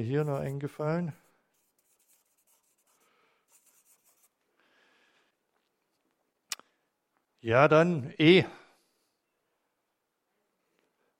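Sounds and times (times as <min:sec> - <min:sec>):
speech: 0:00.0 - 0:01.2, 0:07.4 - 0:08.6
pen scratching across paper while writing: 0:00.0 - 0:04.4.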